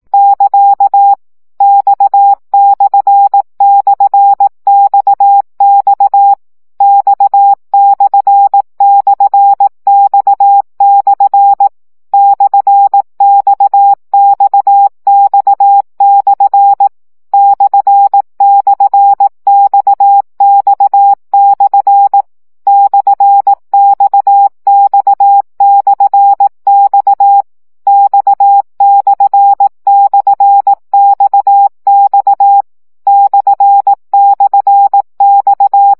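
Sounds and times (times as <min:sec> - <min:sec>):
CW Morse code practice tones at 15 baud: 0:00.1 - 0:35.9.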